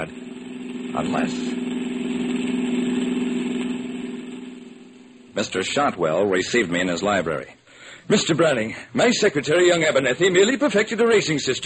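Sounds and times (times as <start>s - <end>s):
speech: 0.0s - 0.2s, 1.0s - 1.6s, 5.4s - 11.6s
car engine idling: 0.0s - 5.4s.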